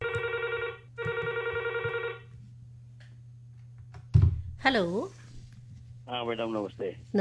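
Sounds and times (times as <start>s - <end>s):
telephone ringing for incoming call to a phone-in programme: 0.0s - 2.3s
speech: 4.6s - 5.2s, 6.1s - 7.1s.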